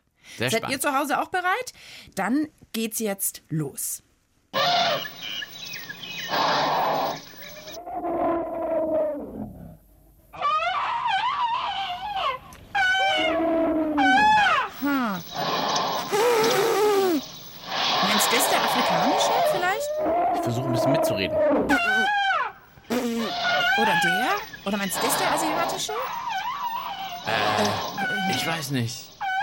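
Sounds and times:
speech: 0.4s - 5.4s, 18.5s - 22.3s, 23.8s - 26.2s, 27.2s - 29.1s
elephants trumpeting and calling: 4.6s - 5.2s, 6.2s - 9.1s, 10.4s - 22.6s, 23.2s - 29.4s.

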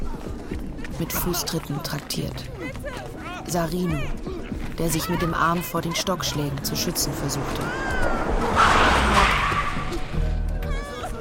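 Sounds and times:
speech: 1.0s - 9.3s
car tires screeching in a skid to a stop: 5.9s - 11.2s
rough car engine rumble: 6.3s - 10.9s.

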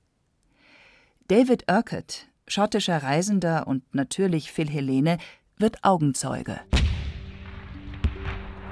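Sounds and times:
speech: 1.3s - 6.8s
naval cannon fire from a sailing-ship battle: 6.7s - 8.7s.

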